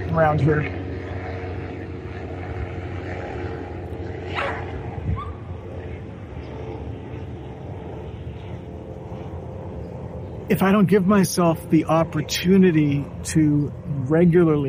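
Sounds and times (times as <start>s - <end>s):
police helicopter flying overhead: 0.0s - 14.6s
speech: 0.2s - 0.8s, 10.5s - 14.6s
dog barking: 4.3s - 4.6s.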